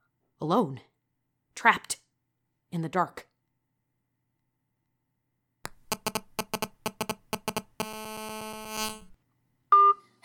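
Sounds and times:
speech: 0.4 - 0.9, 1.6 - 2.0, 2.7 - 3.3
electronic pulsing tones of a phone call ringing unanswered: 5.9 - 9.1.

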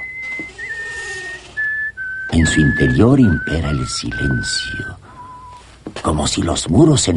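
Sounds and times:
soldier whistling a short tune: 0.0 - 5.7
speech: 2.4 - 5.0, 6.0 - 7.1.

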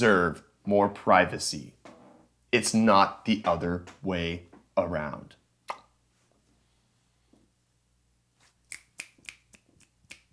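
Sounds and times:
speech: 0.0 - 1.8, 2.5 - 5.8
finger snapping: 8.7 - 10.3.

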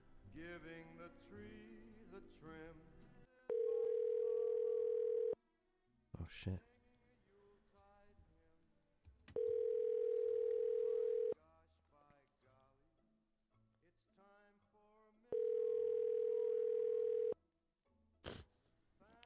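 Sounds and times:
speech: 0.4 - 3.1, 6.2 - 6.7
phone call ringback tone: 3.5 - 5.4, 9.4 - 11.4, 15.4 - 17.4.

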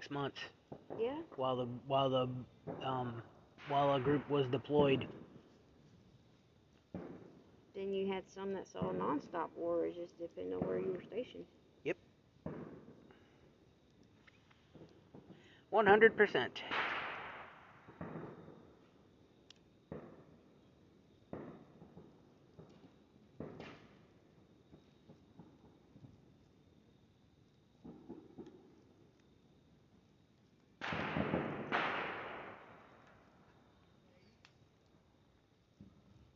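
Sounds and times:
speech: 0.0 - 5.2, 7.8 - 12.0, 15.8 - 16.8
fireworks booming outside: 0.7 - 5.6, 6.9 - 8.0, 8.7 - 9.6, 10.4 - 11.3, 12.4 - 13.5, 14.7 - 19.1, 19.9 - 20.6, 21.2 - 26.1, 27.8 - 28.9, 30.8 - 33.7.

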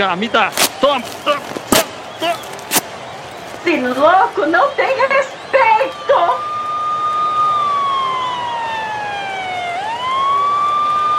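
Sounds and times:
speech: 0.0 - 1.6, 3.6 - 6.4
faint street noise: 0.0 - 11.1
police car siren wailing: 3.2 - 11.1.

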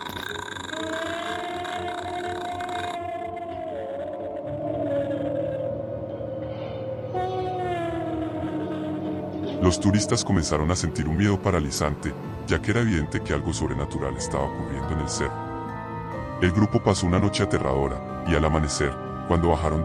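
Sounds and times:
steady low rumbling drone: 0.0 - 19.3
distant eerie scream wavering into a long wail: 0.3 - 10.8
speech: 9.6 - 15.4, 16.4 - 19.8.

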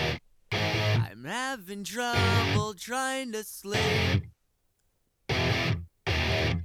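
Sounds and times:
electric guitar through a distortion pedal: 0.0 - 1.2, 2.1 - 2.7, 3.7 - 4.3, 5.3 - 6.6
speech: 1.2 - 4.3.

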